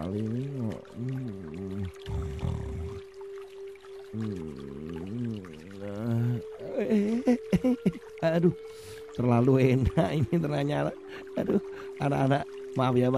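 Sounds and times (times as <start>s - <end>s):
person murmuring: 0.0s - 3.0s, 4.2s - 8.6s
person humming: 0.0s - 3.1s, 4.1s - 8.7s
faint steady tone: 0.0s - 13.1s
trickling pouring water: 0.0s - 13.1s
speech: 0.1s - 1.1s, 8.4s - 13.1s.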